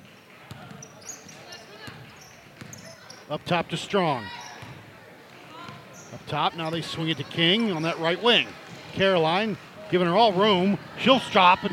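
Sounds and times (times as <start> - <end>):
murmur: 0.0 - 11.7
basketball dribbled slowly up the court during a women's game: 0.4 - 3.6, 4.5 - 7.9
speech: 3.3 - 4.4, 6.3 - 11.7.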